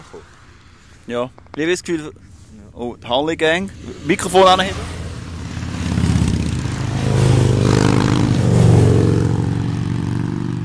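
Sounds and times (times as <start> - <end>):
speech: 0.1 - 0.4, 1.0 - 5.0
two-stroke motorcycle engine revving: 3.7 - 10.6.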